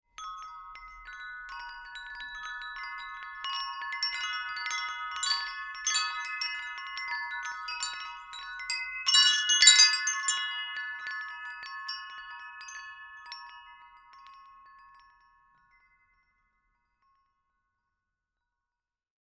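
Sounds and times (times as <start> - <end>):
wind chimes: 0.1 - 17.3.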